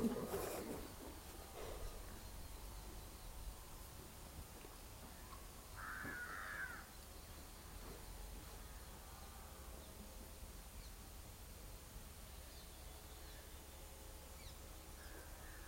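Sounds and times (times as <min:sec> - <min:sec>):
steady hiss of noise: 0:00.0 - 0:15.6
crow cawing: 0:05.8 - 0:06.9, 0:15.0 - 0:15.6.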